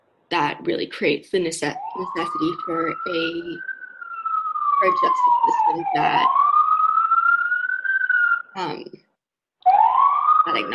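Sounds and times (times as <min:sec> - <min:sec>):
speech: 0:00.3 - 0:03.7, 0:04.8 - 0:06.4, 0:08.6 - 0:09.0, 0:10.4 - 0:10.7
police siren wailing: 0:01.6 - 0:08.8, 0:09.6 - 0:10.7.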